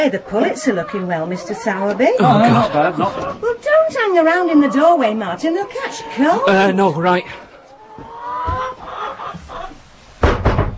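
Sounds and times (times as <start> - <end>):
speech: 0.0 - 7.4
several chickens clucking and squawking in an enclosed shed: 0.0 - 9.9
laughter: 2.0 - 3.6.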